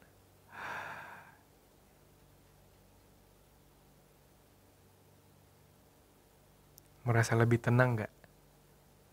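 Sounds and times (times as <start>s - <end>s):
slow airy exhale after held breath: 0.5s - 1.4s
speech: 7.1s - 8.2s.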